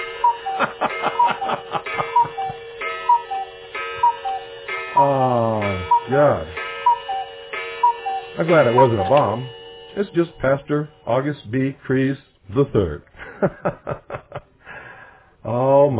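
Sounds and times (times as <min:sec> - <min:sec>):
clock-like ticking: 0:00.0 - 0:11.2
constant humming tone: 0:00.0 - 0:11.6
laughter: 0:00.4 - 0:02.6, 0:13.2 - 0:14.6
speech: 0:08.5 - 0:14.0.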